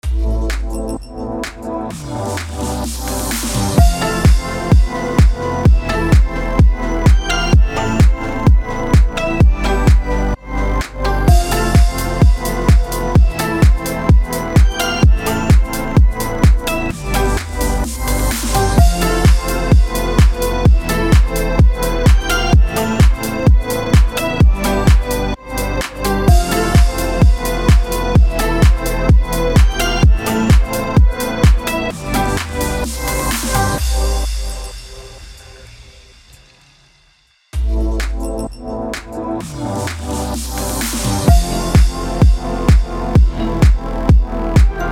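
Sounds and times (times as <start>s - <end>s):
Halloween EDM music bed in F minor at 128 BPM: 0.0s - 44.9s.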